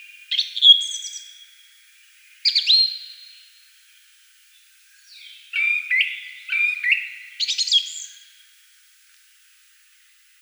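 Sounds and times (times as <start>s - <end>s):
song thrush song with whistled phrases and chirpy notes: 0.0s - 1.6s, 2.3s - 3.5s, 4.9s - 8.4s.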